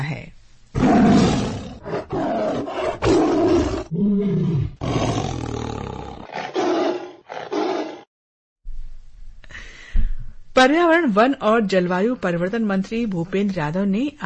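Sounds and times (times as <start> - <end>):
tiger roaring: 0.7 - 8.1
speech: 10.6 - 14.2.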